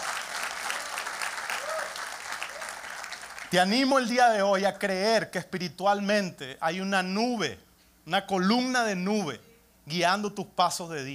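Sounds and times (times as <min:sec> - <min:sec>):
audience applause: 0:00.0 - 0:03.6
faint cheers: 0:00.7 - 0:02.8
speech: 0:03.5 - 0:11.1.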